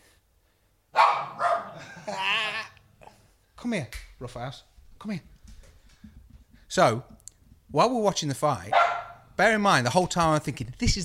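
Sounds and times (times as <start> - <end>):
dogs barking: 0.9 - 2.4, 8.7 - 9.4
laughter: 1.7 - 2.8
speech: 3.6 - 5.4, 6.7 - 11.0.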